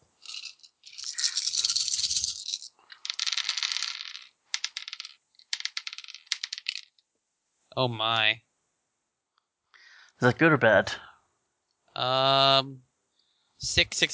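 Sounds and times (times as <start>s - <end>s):
dice rattling and clattering as they are shaken and rolled during a tabletop game: 0.2s - 7.0s
speech: 7.8s - 8.5s, 10.2s - 11.0s, 12.0s - 12.9s, 13.6s - 14.1s.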